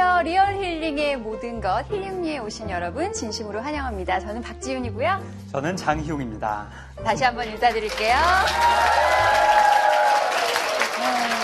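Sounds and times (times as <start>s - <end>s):
speech: 0.2s - 9.6s
crowd applauding: 7.2s - 11.4s
faint cheering: 8.1s - 11.4s.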